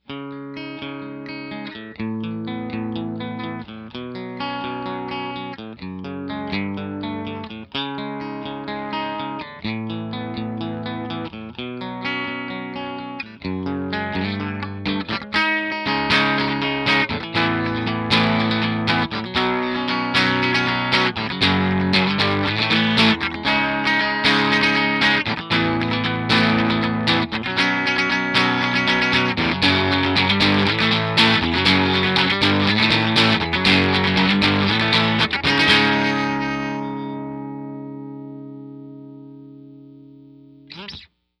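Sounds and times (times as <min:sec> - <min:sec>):
electric guitar with single coil bridge pickup: 0:00.0 - 0:41.1.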